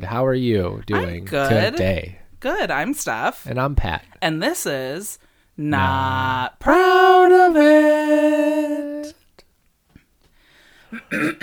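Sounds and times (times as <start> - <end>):
speech: 0.0 - 9.2, 11.0 - 11.4
faint hiss: 0.0 - 11.4
person clearing throat: 10.9 - 11.4.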